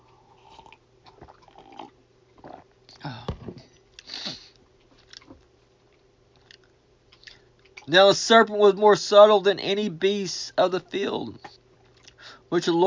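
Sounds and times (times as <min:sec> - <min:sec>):
quiet room hum: 0:00.0 - 0:12.8
person slurping hot coffee: 0:00.1 - 0:01.9
speech: 0:07.9 - 0:11.5, 0:12.5 - 0:12.8.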